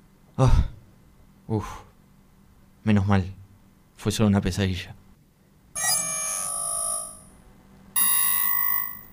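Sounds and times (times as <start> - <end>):
speech: 0.4 - 0.7, 1.5 - 1.9, 2.8 - 3.4, 4.0 - 5.0
electronic alarm ringing in bright harmonic tones: 5.8 - 7.3, 8.0 - 9.1.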